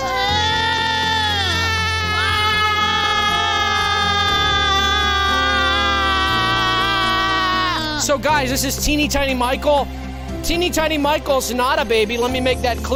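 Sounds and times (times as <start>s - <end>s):
person imitating a newborn baby crying: 0.0s - 8.0s
speech: 8.0s - 12.9s.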